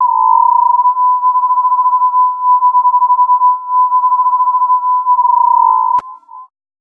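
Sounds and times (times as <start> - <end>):
frequency modulated sine tone: 0.0 - 6.5.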